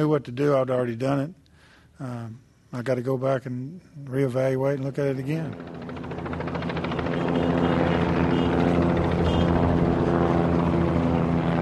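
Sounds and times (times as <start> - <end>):
speech: 0.0 - 1.4, 2.0 - 5.9
helicopter rotor chop circling over the ballpark in Arlington: 4.7 - 11.6
propeller planes circling over the ballpark in Arlington: 4.7 - 11.6.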